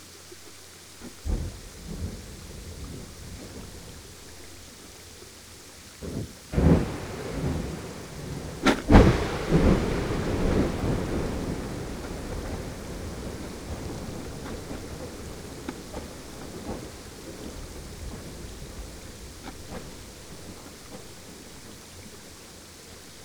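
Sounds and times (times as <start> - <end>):
crashes recorded by hydrophone: 6.6 - 19.8.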